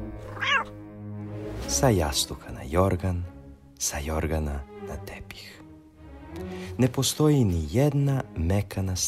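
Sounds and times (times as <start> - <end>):
cat meowing: 0.2 - 0.8
speech: 1.7 - 5.6, 6.3 - 9.0.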